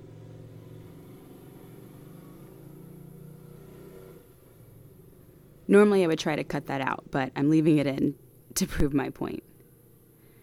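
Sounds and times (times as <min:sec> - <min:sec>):
motorcycle engine passing outside: 0:00.0 - 0:07.4
speech: 0:05.7 - 0:09.5.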